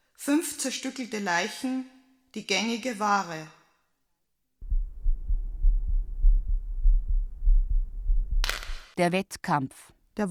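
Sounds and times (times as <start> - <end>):
speech: 0.2 - 3.6, 9.0 - 10.2
dull hum: 4.6 - 8.5
heartbeat thumping: 4.6 - 8.8.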